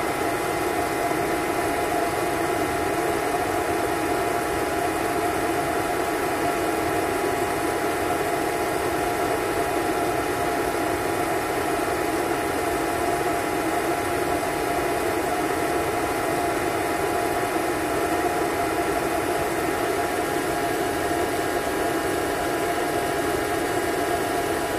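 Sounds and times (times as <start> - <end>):
vacuum cleaner: 0.0 - 24.7.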